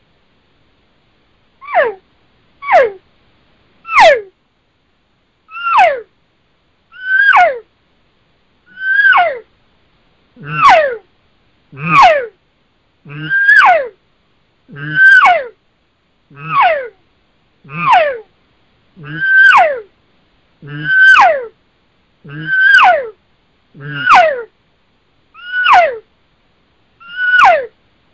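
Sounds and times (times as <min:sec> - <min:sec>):
person imitating cow elk calls and estrus screams: 0:01.6 - 0:02.0, 0:02.6 - 0:03.0, 0:03.9 - 0:04.3, 0:05.5 - 0:06.1, 0:06.9 - 0:07.6, 0:08.7 - 0:09.4, 0:10.4 - 0:11.1, 0:11.7 - 0:12.4, 0:13.1 - 0:14.0, 0:14.7 - 0:15.6, 0:16.3 - 0:17.0, 0:17.7 - 0:18.3, 0:19.0 - 0:19.9, 0:20.6 - 0:21.5, 0:22.2 - 0:23.2, 0:23.8 - 0:24.5, 0:25.4 - 0:26.0, 0:27.0 - 0:27.7.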